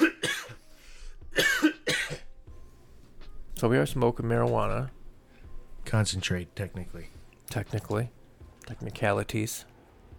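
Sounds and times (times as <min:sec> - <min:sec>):
person coughing harshly: 0:00.0 - 0:00.6, 0:01.3 - 0:02.3
speech: 0:03.6 - 0:05.0, 0:05.9 - 0:09.7.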